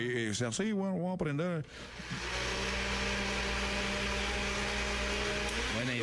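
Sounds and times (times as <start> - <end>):
speech: 0.0 - 2.6, 5.8 - 6.0
blender motor whirring: 1.7 - 6.0.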